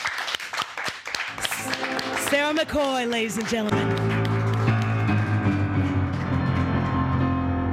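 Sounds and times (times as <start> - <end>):
studio audience applause: 0.0 - 7.6
people cheering: 1.3 - 7.2
speech: 1.4 - 4.1.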